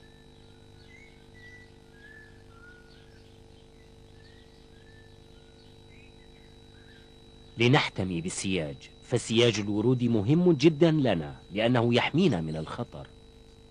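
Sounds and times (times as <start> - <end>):
faint sharp bird alarm calls: 0.0 - 8.3
steady low hum: 0.0 - 13.6
speech: 7.6 - 13.2.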